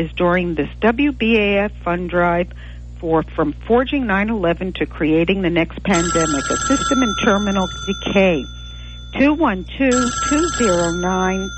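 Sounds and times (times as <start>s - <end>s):
speech: 0.0s - 11.5s
steady high hum: 0.0s - 11.5s
telephones ringing with pledge calls during a radio station fund drive: 5.9s - 11.5s.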